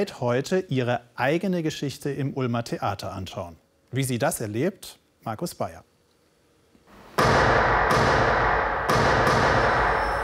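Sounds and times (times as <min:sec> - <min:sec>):
speech: 0:00.0 - 0:05.9
gunshots echoing through a theatre during a stage play: 0:07.2 - 0:10.2.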